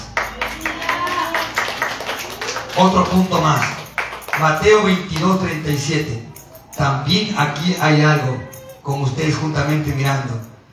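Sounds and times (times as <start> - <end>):
audience clapping in praise of Jesus Christ: 0.0 - 5.8
speech: 2.8 - 3.8, 4.4 - 10.5.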